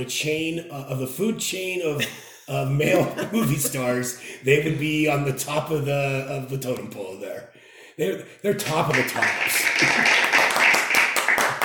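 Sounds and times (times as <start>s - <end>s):
speech: 0.0s - 10.2s
laughter: 1.9s - 4.7s, 8.9s - 10.6s
soft polite clapping from a few people: 8.6s - 11.6s.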